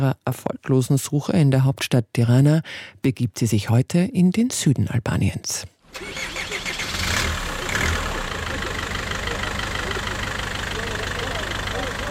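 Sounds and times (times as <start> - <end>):
speech: 0.0 - 6.5
bus engine idling and revving as the bus pulls away: 5.9 - 12.1.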